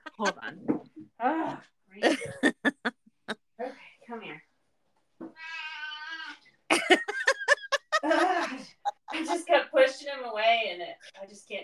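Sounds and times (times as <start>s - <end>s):
speech: 0.2s - 1.7s
laughter: 2.0s - 2.9s, 6.7s - 9.5s
cat meowing: 5.4s - 6.4s.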